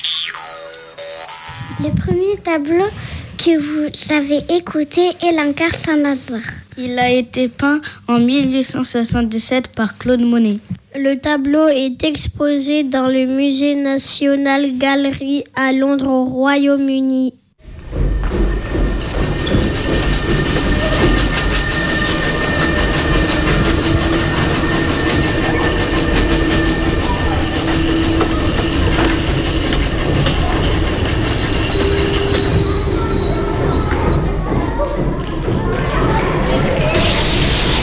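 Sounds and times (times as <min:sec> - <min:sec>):
speech: 0:01.8 - 0:17.4
trains rumbling through a busy railway station: 0:17.6 - 0:37.8
high metallic train wheel squeals: 0:17.7 - 0:37.8.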